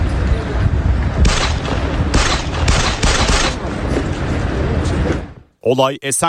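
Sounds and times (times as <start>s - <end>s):
steady noisy background: 0.0s - 6.2s
gunshots from a street shooting recorded by a security camera: 1.2s - 3.7s.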